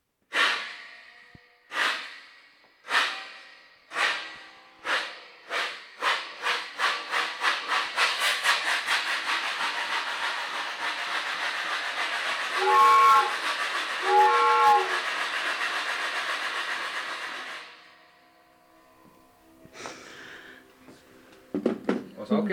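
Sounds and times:
train whistle blasts from a hand-operated train sound machine: 0:00.3 - 0:06.2, 0:12.0 - 0:18.6
train chuffing sound effect from a hand-operated train sound machine: 0:00.3 - 0:21.2.

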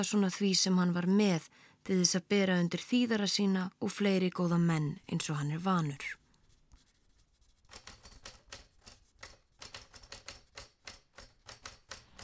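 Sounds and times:
speech: 0:00.0 - 0:06.2
typewriter typing: 0:07.6 - 0:12.2.

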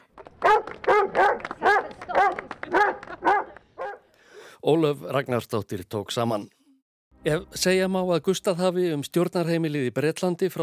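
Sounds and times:
dog barking and whimpering: 0:00.4 - 0:04.0
speech: 0:04.7 - 0:06.6, 0:07.2 - 0:10.6.

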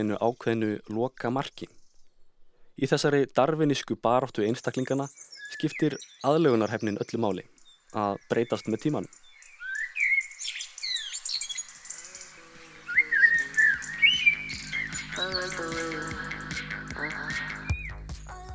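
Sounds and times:
speech: 0:00.0 - 0:01.8, 0:02.8 - 0:09.2
bird song: 0:00.0 - 0:18.2.

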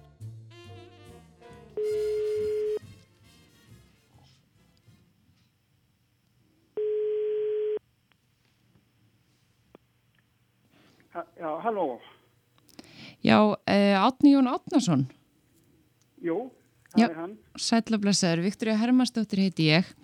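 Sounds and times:
telephone ringback tone while a number is dialled: 0:01.8 - 0:02.8, 0:06.8 - 0:07.8
speech: 0:11.4 - 0:12.1, 0:13.2 - 0:15.2, 0:16.2 - 0:20.0.

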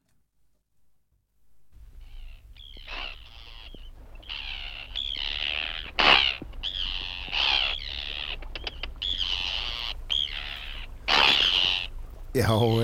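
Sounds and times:
low steady rumble: 0:01.4 - 0:12.8
Arctic terns calling with harsh grating screeches: 0:02.0 - 0:12.0
speech: 0:12.4 - 0:12.8.

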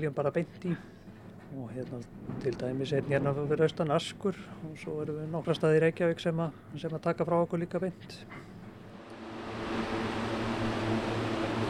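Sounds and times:
speech: 0:00.0 - 0:08.6
large industrial fans roaring in a drying chamber: 0:08.8 - 0:11.6.

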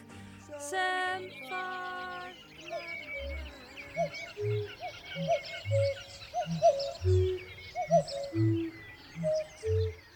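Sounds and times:
birds hooting on a moor: 0:00.2 - 0:10.1
faint bird chirps and whistles on a moor: 0:01.2 - 0:10.1.

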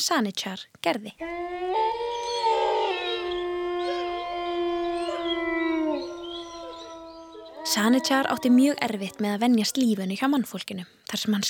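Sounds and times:
speech: 0:00.0 - 0:01.5, 0:07.7 - 0:11.4
wolves howling in chorus: 0:01.2 - 0:09.9.

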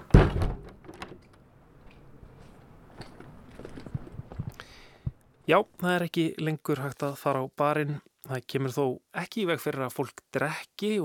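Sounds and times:
door shutting: 0:00.0 - 0:01.4
speech: 0:05.5 - 0:11.0.

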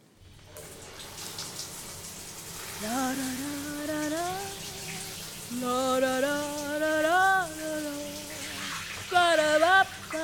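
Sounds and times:
running shower water: 0:00.2 - 0:10.2.

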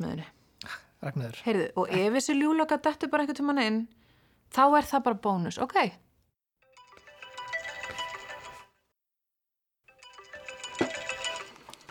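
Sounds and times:
speech: 0:00.0 - 0:06.0
melodic electronic phone ringtone: 0:06.6 - 0:08.8, 0:09.9 - 0:11.8.

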